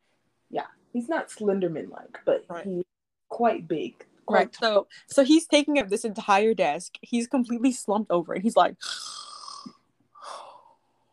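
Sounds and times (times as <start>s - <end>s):
speech: 0.5s - 9.2s
voice imitating a person snoring: 8.8s - 9.8s.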